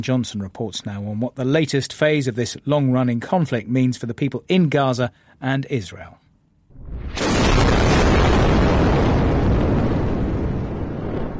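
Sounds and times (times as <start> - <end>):
speech: 0.0 - 6.2
powerful explosion from an Israeli airstrike on Gaza: 6.7 - 11.3.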